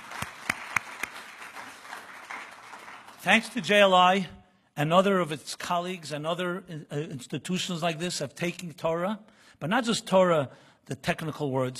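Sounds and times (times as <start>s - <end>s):
audience applause: 0.0s - 3.9s
speech: 3.2s - 11.7s.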